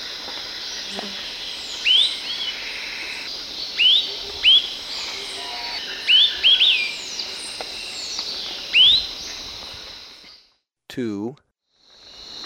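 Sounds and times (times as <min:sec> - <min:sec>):
Long-tailed tyrant calls in Ecuador: 0:01.7 - 0:07.2, 0:08.7 - 0:09.1.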